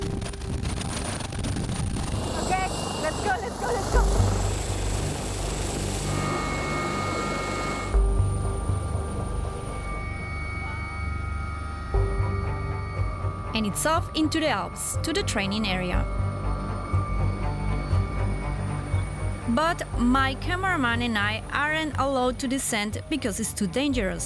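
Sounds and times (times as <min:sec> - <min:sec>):
wind buffeting: 0:00.0 - 0:04.4
helicopter drone with low rotor thump and whining engine on a training flight: 0:00.0 - 0:24.0
speech: 0:13.6 - 0:16.2, 0:19.6 - 0:24.2.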